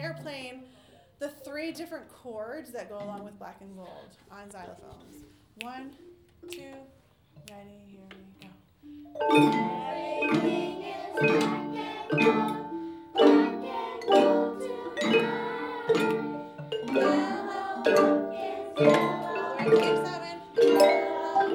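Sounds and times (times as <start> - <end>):
block chords: 5.6 - 21.5.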